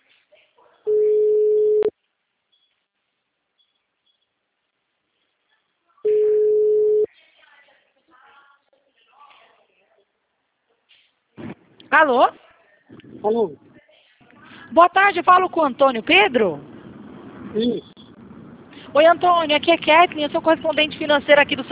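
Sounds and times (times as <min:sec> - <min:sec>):
telephone ringback tone on an outgoing call: 0:00.9 - 0:01.9, 0:06.1 - 0:07.1
speech: 0:11.9 - 0:12.4, 0:13.2 - 0:13.7, 0:14.7 - 0:16.7, 0:17.5 - 0:17.9, 0:18.9 - 0:21.6.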